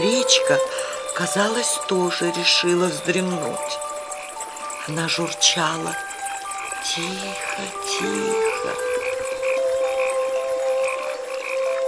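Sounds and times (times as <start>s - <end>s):
chorus of frogs croaking at night: 0.0s - 11.8s
crickets chirping at night: 0.0s - 11.8s
speech: 0.2s - 3.8s, 4.8s - 6.1s, 6.8s - 8.9s.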